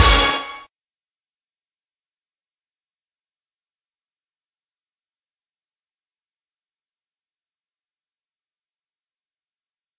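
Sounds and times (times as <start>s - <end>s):
news channel music hit: 0.0s - 0.6s.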